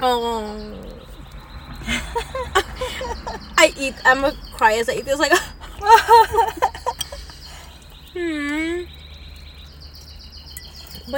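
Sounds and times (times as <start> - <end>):
speech: 0.0 - 0.8, 1.8 - 6.7, 8.2 - 9.0
birds singing: 0.0 - 11.1
low constant hum: 0.0 - 11.1
laughter: 1.8 - 3.7, 5.3 - 8.8.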